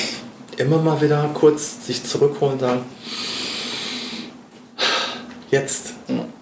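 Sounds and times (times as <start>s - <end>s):
speech: 0.6s - 3.4s, 5.5s - 6.2s
deep inhale through the nose: 3.0s - 5.3s.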